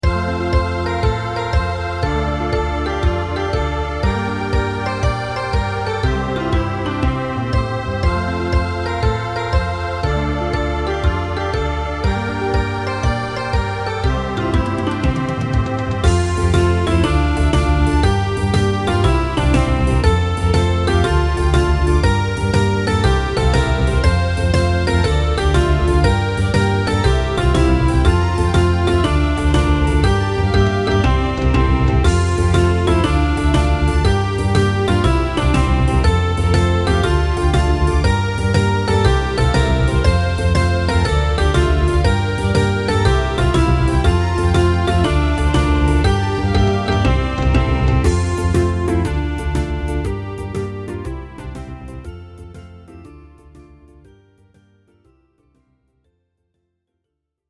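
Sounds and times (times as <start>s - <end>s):
children's song backing track: 0.0s - 55.2s.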